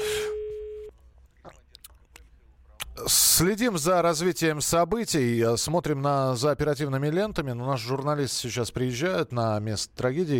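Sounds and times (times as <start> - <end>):
telephone ringback tone: 0.0 - 0.9
speech: 3.0 - 10.3.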